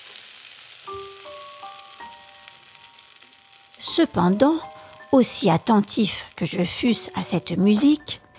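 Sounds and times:
butter sizzling and hissing while frying in a hot pan: 0.0 - 8.2
speech: 3.8 - 8.2.

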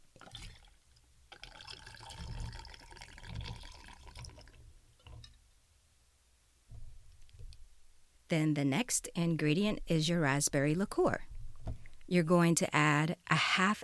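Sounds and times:
vodka pouring into a cocktail shaker with ice: 0.1 - 5.4
speech: 8.3 - 11.3, 12.1 - 13.8.

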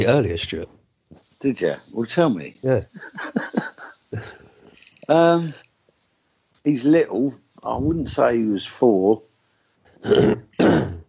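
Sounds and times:
speech: 0.0 - 4.3, 5.1 - 5.6, 6.6 - 9.3, 10.0 - 11.0
laughter: 2.6 - 4.6
throat clearing: 10.0 - 11.0.

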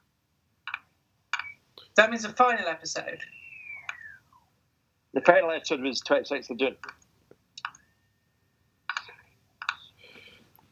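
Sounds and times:
slow keyboard typing: 0.7 - 1.6, 6.8 - 7.9, 8.9 - 10.6
speech: 2.0 - 3.4, 5.2 - 7.0.

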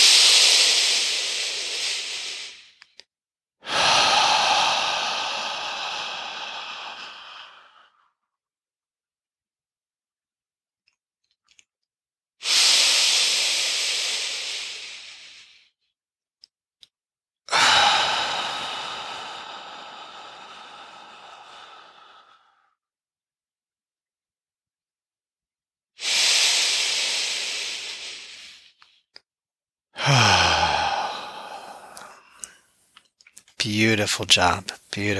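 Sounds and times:
deep breathing through the nose in a guided breathing practice: 0.0 - 2.9, 3.6 - 8.1, 12.4 - 15.8, 17.5 - 22.8, 26.0 - 29.0, 30.0 - 33.1
speech: 33.7 - 35.1.

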